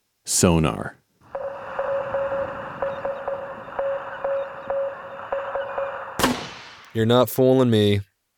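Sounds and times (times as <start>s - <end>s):
speech: 0.3s - 1.0s, 7.0s - 8.1s
sharp burst of noise: 1.2s - 7.0s
Morse code SOS signal beeps: 1.3s - 6.2s.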